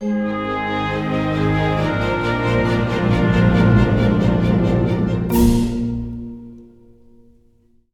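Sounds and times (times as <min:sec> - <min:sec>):
event fanfare from a game: 0:00.0 - 0:06.2.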